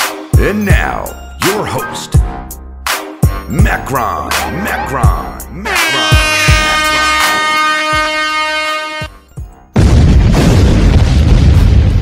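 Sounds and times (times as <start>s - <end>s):
speech: 0.4s - 2.6s, 3.5s - 6.0s
sustained horn-like tone: 5.6s - 9.2s
explosion sound effect: 9.7s - 11.9s.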